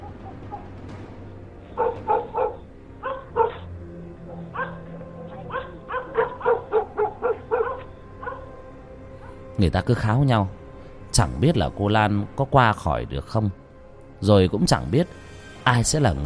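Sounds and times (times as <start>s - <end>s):
low steady background: 0.0s - 16.2s
dogs barking at night at the edge of a village by a river: 1.6s - 9.5s
speech: 9.6s - 10.6s, 11.2s - 13.6s, 14.2s - 16.2s.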